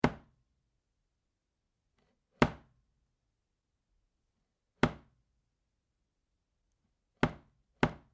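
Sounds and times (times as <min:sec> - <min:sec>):
meat cleaver chopping meat on a wooden chopping board: 0:00.0 - 0:00.4, 0:07.2 - 0:08.1.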